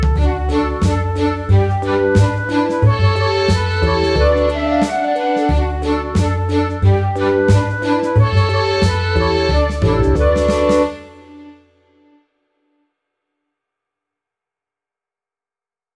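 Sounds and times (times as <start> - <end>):
violin playing: 0.2 - 11.7.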